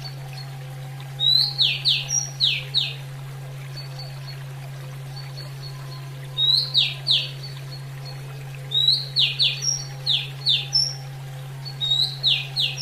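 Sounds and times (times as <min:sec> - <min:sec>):
steady low hum: 0:00.0 - 0:12.8
female Oriental magpie-robin song with upward whistle and descending slurred notes: 0:01.2 - 0:03.0, 0:05.1 - 0:07.8, 0:08.7 - 0:12.8.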